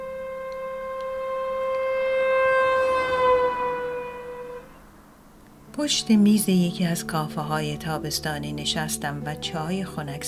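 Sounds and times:
car horn blaring: 0.0 - 5.0
speech: 5.8 - 10.2.

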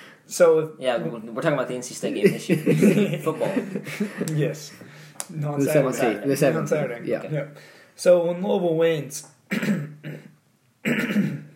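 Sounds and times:
speech: 0.3 - 9.9
laughter: 2.2 - 4.8
man clearing throat: 9.5 - 11.5
man coughing with something stuck in his throat: 9.5 - 11.5.

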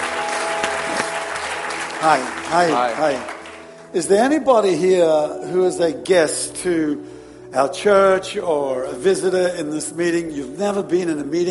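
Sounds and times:
audience applauding at a church meeting: 0.0 - 3.9
speech: 2.0 - 11.4.

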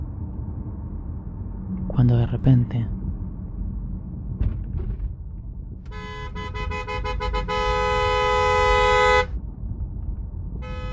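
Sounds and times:
steady road rumble on a highway: 0.0 - 10.9
speech: 2.0 - 3.0
red truck horn honking on a highway at night: 5.9 - 9.4, 10.6 - 10.9.

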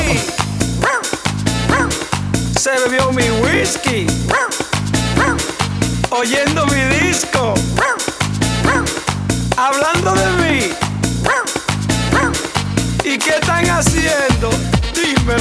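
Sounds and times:
person singing: 0.0 - 2.0, 2.6 - 5.5, 6.1 - 8.9, 9.6 - 12.4, 13.0 - 15.4
upbeat rhythmic song: 0.0 - 15.4
dog barks and yips: 0.8 - 1.1, 4.3 - 4.6, 7.8 - 8.8, 11.2 - 12.3
speech: 2.7 - 4.6, 6.2 - 8.1, 13.1 - 15.4.

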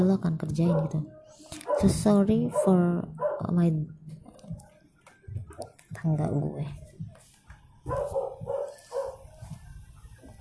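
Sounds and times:
speech: 0.0 - 4.6, 6.0 - 6.8
dog barking outside: 0.6 - 3.5, 7.8 - 9.5.

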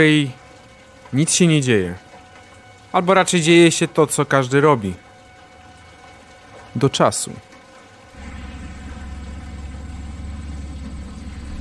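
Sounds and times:
speech: 0.0 - 0.4, 1.1 - 2.0, 2.9 - 5.0, 6.8 - 7.5
car engine approaching: 8.1 - 11.5.

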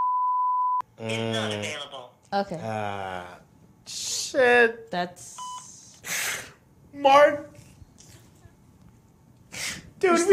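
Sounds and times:
censor bleep tone over a phone number: 0.0 - 0.9, 5.4 - 5.7
speech: 1.0 - 5.5, 7.0 - 7.5, 10.0 - 10.3.

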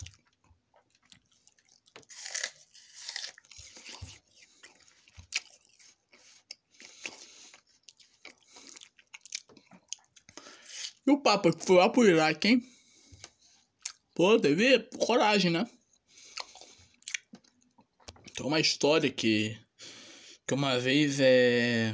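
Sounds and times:
person biting and chewing an apple: 0.0 - 11.0, 16.2 - 18.4
speech: 11.1 - 12.7, 14.2 - 15.8, 18.4 - 19.6, 20.5 - 21.9.

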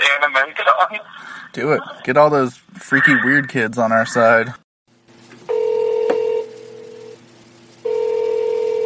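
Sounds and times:
speech: 0.2 - 4.6
outgoing phone call electronic ringback tones: 5.5 - 7.2, 7.8 - 8.8.

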